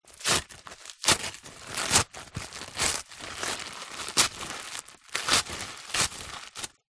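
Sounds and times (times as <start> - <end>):
present being unwrapped: 0.0 - 6.9.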